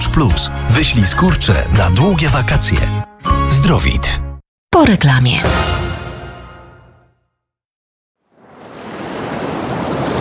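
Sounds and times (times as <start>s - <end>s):
speech: 0.0s - 3.1s, 3.7s - 4.2s, 4.8s - 5.8s
waves of the Polish sea breaking on the shore: 8.4s - 10.2s.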